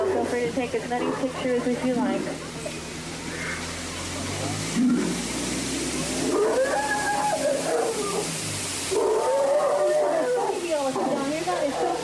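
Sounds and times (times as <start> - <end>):
splashing water from Indian elephants bathing in a sacred pool: 0.0 - 12.0
speech: 0.6 - 2.6
Indian elephants calling: 1.0 - 3.9, 6.2 - 12.0.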